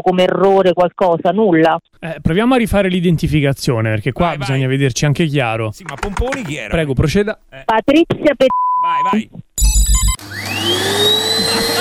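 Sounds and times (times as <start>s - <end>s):
speech: 0.0s - 11.7s
short burst of electronic tones from a vacuum cleaner: 9.6s - 10.2s
vacuum cleaner motor whine climbing in pitch: 9.6s - 11.7s.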